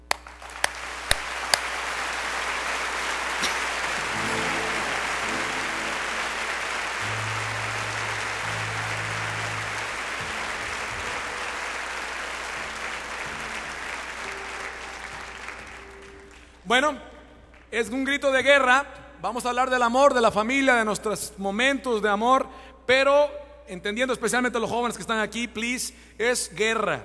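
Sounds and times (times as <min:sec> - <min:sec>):
audience applause at a love-themed concert: 0:00.0 - 0:16.6
soft low sustained musical tones: 0:03.9 - 0:17.7
speech: 0:16.7 - 0:17.1, 0:17.7 - 0:27.0.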